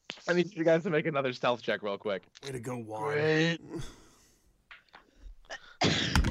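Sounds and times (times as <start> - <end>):
speech: 0.3 - 4.0
breathy intakes: 3.6 - 6.2
person coughing: 5.5 - 6.2.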